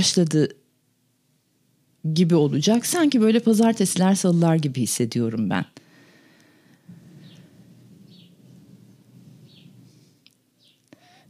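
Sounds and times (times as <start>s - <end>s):
speech: 0.0s - 0.6s, 2.0s - 5.8s
deep steady roar of hot air balloons passing overhead: 6.9s - 10.2s
faint bird chirps outdoors: 7.1s - 8.6s, 9.3s - 10.0s, 10.6s - 11.2s.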